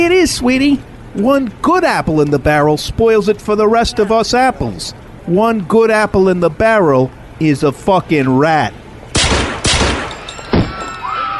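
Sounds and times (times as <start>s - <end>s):
speech: 0.0s - 8.8s
gunshots: 9.1s - 10.9s.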